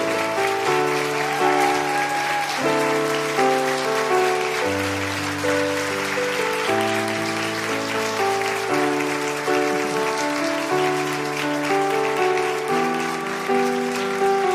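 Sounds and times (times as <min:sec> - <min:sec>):
crowd applause: 0:00.0 - 0:14.5.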